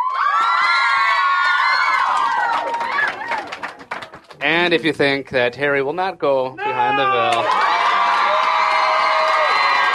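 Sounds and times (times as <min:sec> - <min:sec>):
large audience at a live event cheering, shouting and whooping: 0:00.0 - 0:03.6, 0:06.6 - 0:09.9
speech: 0:04.4 - 0:07.7.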